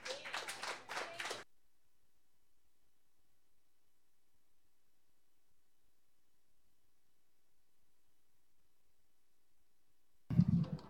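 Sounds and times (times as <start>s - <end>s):
audience applause for a performer: 0.0s - 1.4s.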